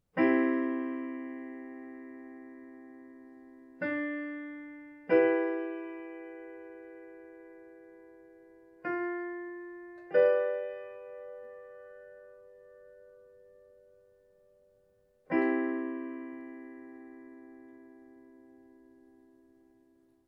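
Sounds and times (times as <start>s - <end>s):
chords under a melody in G: 0.0s - 20.2s.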